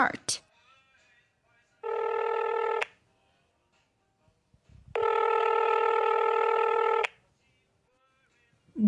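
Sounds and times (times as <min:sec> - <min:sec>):
speech: 0:00.0 - 0:00.3
telephone ringing with a steady electronic trill: 0:01.8 - 0:02.9, 0:05.0 - 0:07.1.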